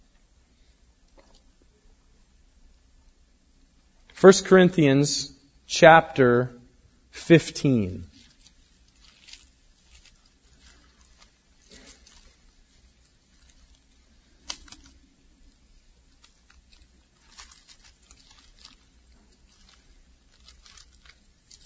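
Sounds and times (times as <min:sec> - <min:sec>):
speech: 0:04.2 - 0:08.1
many people flipping book pages in a room: 0:08.1 - 0:21.6.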